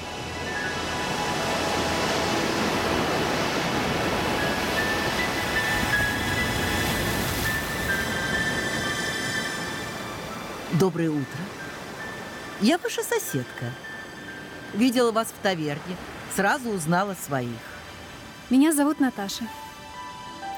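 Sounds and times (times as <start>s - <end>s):
sea waves crashing on rocks: 0.0s - 18.6s
speech: 10.8s - 11.5s, 12.6s - 13.8s, 14.7s - 17.7s, 18.5s - 19.6s.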